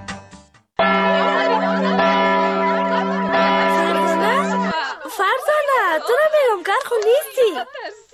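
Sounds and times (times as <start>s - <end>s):
school bell ringing: 0.8s - 6.4s
laughter: 1.0s - 8.1s
person talking: 3.7s - 8.0s.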